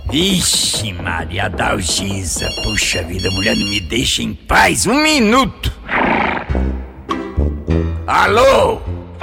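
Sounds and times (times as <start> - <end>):
speech: 0.1 - 5.8, 8.1 - 8.9
mare neighing: 5.8 - 6.7.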